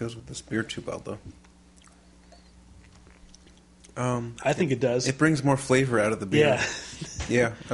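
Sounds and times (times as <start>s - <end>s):
speech: 0.0s - 1.5s, 4.0s - 7.7s
chewing a bite of smoked cheese with moist mouth clicks: 1.8s - 4.0s.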